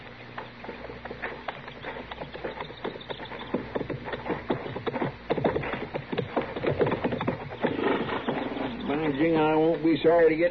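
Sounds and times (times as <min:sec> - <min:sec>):
several horses' hooves clip-clopping on hard ground: 0:00.0 - 0:10.4
speech: 0:09.2 - 0:10.4.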